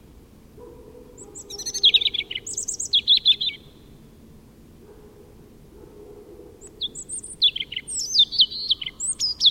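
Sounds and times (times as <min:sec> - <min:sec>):
European robin singing tinkling notes and trills: 0:01.2 - 0:03.9, 0:06.6 - 0:09.5.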